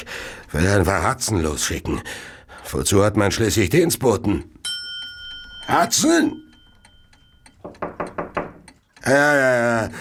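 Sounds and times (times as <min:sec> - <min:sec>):
speech: 0:00.5 - 0:04.6, 0:05.7 - 0:06.5, 0:09.0 - 0:09.9
firm raps knocking at a door: 0:07.6 - 0:08.7.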